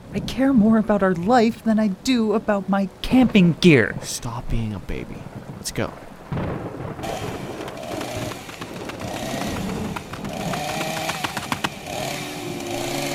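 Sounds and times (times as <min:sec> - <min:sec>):
speech: 0:00.1 - 0:07.2
chainsaw engine revving: 0:07.0 - 0:13.1
sharp clattering bursts: 0:07.0 - 0:13.1.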